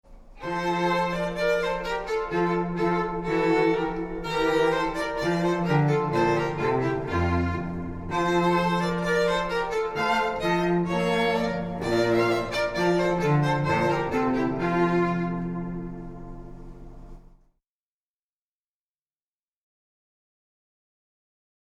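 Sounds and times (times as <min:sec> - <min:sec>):
string trio playing wedding ceremony music: 0:00.1 - 0:17.4.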